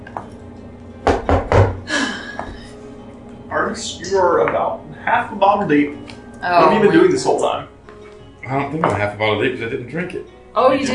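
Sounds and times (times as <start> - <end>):
speech: 0.2 - 0.4, 3.7 - 7.7, 8.4 - 10.9
knocking on a wooden door: 1.0 - 1.9.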